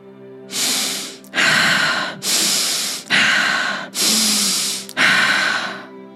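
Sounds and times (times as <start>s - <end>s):
deep guided breathing with forceful inhales and exhales: 0.5s - 5.9s.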